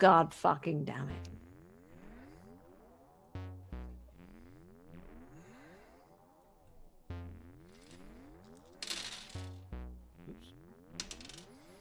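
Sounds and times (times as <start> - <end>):
speech: 0.0 - 1.4
big handful of dice rolled for initiative: 8.5 - 9.6, 11.0 - 11.7.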